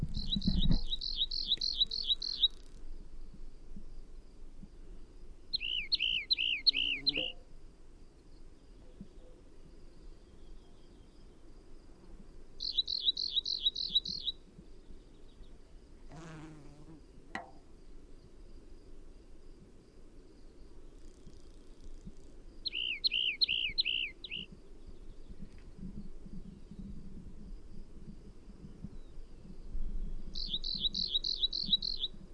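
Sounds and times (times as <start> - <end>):
rock wren singing: 0.1 - 2.8, 5.5 - 7.4, 8.3 - 11.4, 12.6 - 15.6, 22.6 - 25.4, 28.9 - 32.2.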